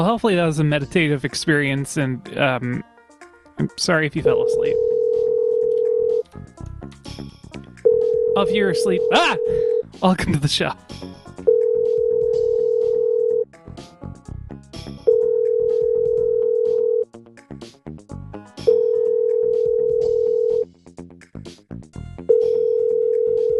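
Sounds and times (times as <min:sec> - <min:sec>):
speech: 0:00.0 - 0:02.9, 0:03.6 - 0:04.9, 0:08.4 - 0:11.2
several telephones ringing: 0:04.2 - 0:06.2, 0:07.9 - 0:09.8, 0:11.5 - 0:13.4, 0:15.1 - 0:17.0, 0:18.6 - 0:20.6, 0:22.3 - 0:23.5.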